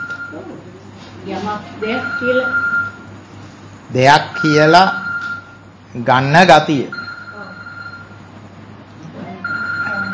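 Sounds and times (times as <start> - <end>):
low continuous hum: 0.0 - 10.1
speech: 0.3 - 2.8, 3.9 - 5.0, 6.0 - 7.0
phone ringing with a bright electronic tone: 1.9 - 3.1, 4.4 - 5.6, 6.9 - 8.3, 9.4 - 10.1.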